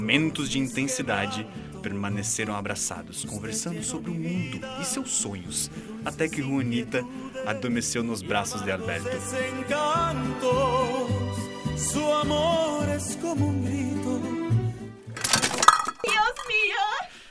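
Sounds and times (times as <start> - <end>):
soft music: 0.0 - 15.1
speech: 0.1 - 14.4
metal pots and pans crashing to a kitchen floor: 15.2 - 16.6.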